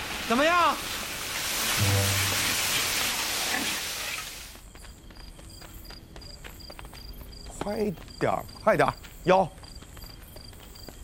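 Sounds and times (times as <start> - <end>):
shredded potatoes frying in a wok: 0.0 - 4.6
speech: 0.3 - 1.0, 7.7 - 9.6
low hum: 1.8 - 2.9.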